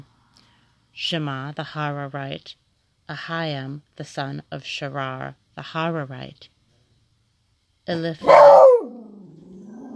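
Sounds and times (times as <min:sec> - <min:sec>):
speech: 0:01.0 - 0:06.5, 0:07.9 - 0:08.7
dog barking at home: 0:08.2 - 0:09.2
dog growling at home: 0:08.3 - 0:09.9.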